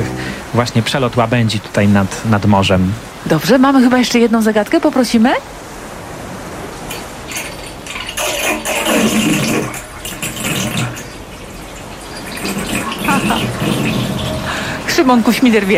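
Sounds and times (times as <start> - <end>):
speech: 0.6 - 5.6, 15.1 - 15.7
water draining from a bathtub: 6.8 - 15.7.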